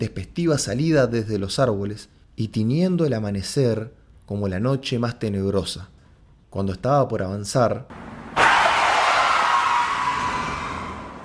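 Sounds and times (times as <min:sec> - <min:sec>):
speech: 0:00.0 - 0:05.9, 0:06.5 - 0:08.1
car tires screeching as it skids to a stop: 0:08.3 - 0:11.2.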